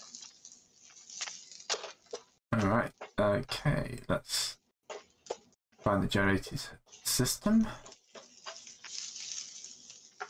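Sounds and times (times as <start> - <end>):
food sizzling while frying in a pan: 0.0 - 2.4, 7.8 - 10.2
crackles and pops of frying food: 0.0 - 3.2, 7.8 - 10.2
speech: 2.6 - 4.5, 5.8 - 7.9.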